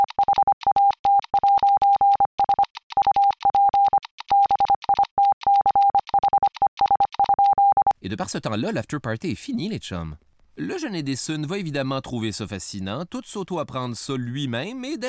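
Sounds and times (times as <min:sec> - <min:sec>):
steady electronic tone keying Morse code beeps: 0:00.0 - 0:08.0
speech: 0:08.0 - 0:15.0.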